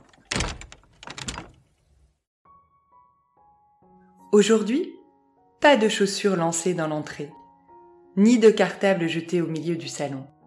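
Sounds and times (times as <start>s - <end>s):
house door pushed open with a rattling clatter: 0.0s - 2.0s
speech: 4.3s - 5.0s, 5.6s - 7.4s, 8.2s - 10.3s.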